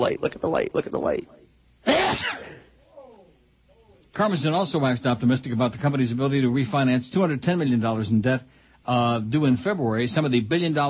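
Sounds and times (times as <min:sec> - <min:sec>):
speech: 0:00.0 - 0:02.4, 0:04.2 - 0:10.8
person sneezing: 0:01.8 - 0:02.7
faint voiced sound: 0:02.8 - 0:04.0.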